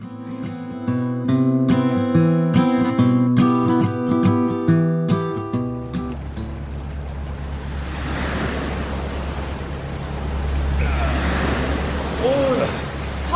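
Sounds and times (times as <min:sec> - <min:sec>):
music: 0:00.0 - 0:06.7
rough sea waves washing around a fishing boat out to catch webfoot octopus: 0:05.1 - 0:13.3
gusty wind at sea: 0:05.5 - 0:13.3.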